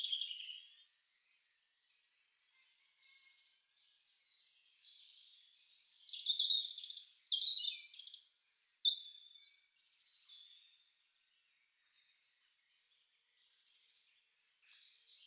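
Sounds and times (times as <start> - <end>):
European robin singing high thin warble of tinkling trills: 0.0 - 0.8, 5.6 - 10.8.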